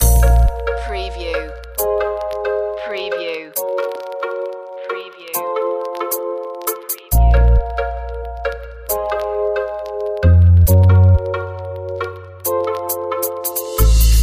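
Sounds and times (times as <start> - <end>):
glitch pop loop: 0.0 - 14.2.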